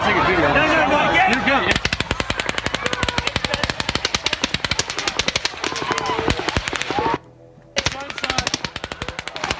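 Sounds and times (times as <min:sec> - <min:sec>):
crowd noise and voices at a concert: 0:00.0 - 0:09.5
automatic gunfire at a concert: 0:01.7 - 0:07.1, 0:07.8 - 0:09.5.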